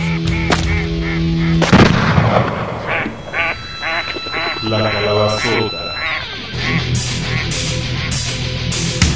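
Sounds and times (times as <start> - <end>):
geese honking and calling: 0.0 - 1.7, 2.8 - 9.0
shotgun blasts: 1.6 - 2.9.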